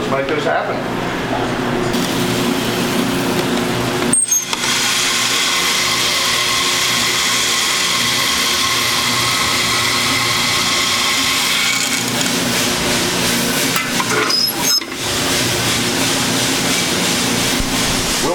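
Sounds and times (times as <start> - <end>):
speech: 0.1 - 2.0
Brazilian coffee beans tumbling in a spinning roaster drum: 1.9 - 18.3.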